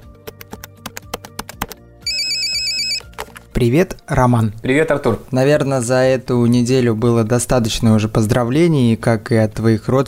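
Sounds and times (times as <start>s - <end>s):
telephone ringing with a bright electronic trill: 2.0s - 3.1s
speech: 3.6s - 10.0s.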